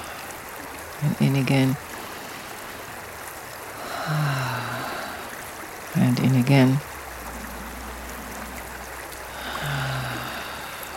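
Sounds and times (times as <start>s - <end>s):
creek water flowing: 0.0s - 10.9s
speech: 1.0s - 1.9s, 6.4s - 6.9s
faint low hum: 3.9s - 10.9s.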